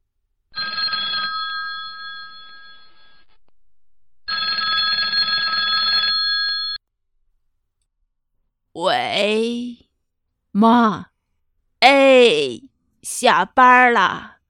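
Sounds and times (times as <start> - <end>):
telephone ringing with bright bell tones: 0.5 - 3.4, 4.2 - 6.8
speech: 10.6 - 11.1, 11.8 - 14.3.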